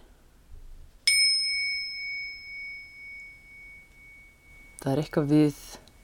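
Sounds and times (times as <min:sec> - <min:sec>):
single bell struck ringing: 0:01.1 - 0:05.3
speech: 0:04.8 - 0:05.8.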